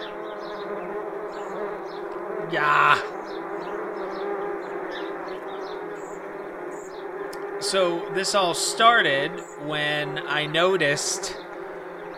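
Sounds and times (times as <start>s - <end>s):
many wasps buzzing: 0.0s - 12.1s
speech: 2.5s - 3.2s, 7.7s - 11.4s.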